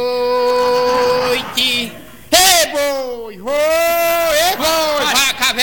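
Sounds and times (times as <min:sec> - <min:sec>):
person imitating an ox mooing during a song: 0:00.1 - 0:02.2
laughter: 0:00.2 - 0:03.1, 0:03.8 - 0:05.6.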